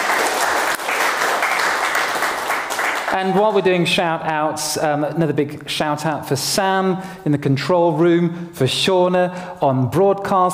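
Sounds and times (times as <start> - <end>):
audience applause of many hands clapping: 0.0 - 3.4
speech: 3.1 - 10.5.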